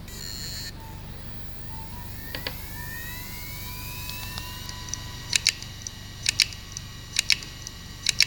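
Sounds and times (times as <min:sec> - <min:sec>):
damaged Seagate Barracuda 7200 hard drive heads: 0:00.1 - 0:08.2.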